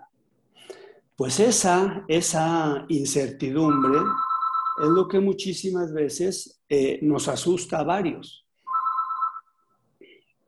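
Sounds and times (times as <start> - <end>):
speech: 1.2 - 4.2, 4.8 - 8.4
telephone ringing: 3.6 - 5.4, 8.7 - 9.8.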